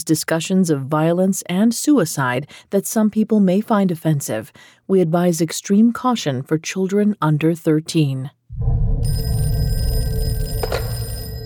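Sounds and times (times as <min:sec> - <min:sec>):
speech: 0:00.0 - 0:09.4
telephone ringing with bright electronic tone: 0:09.0 - 0:11.4.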